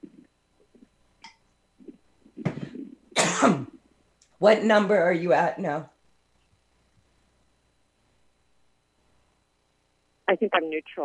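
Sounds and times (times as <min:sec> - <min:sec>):
soft throat noises: 0:01.8 - 0:03.8
person coughing: 0:02.4 - 0:03.8
speech: 0:03.4 - 0:03.7, 0:04.4 - 0:05.9, 0:10.3 - 0:11.0.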